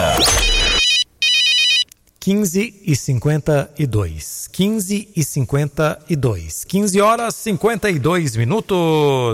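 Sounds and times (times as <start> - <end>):
telephone ringing with a bright trilling bell tone: 0.2 - 1.9
speech: 2.2 - 9.3.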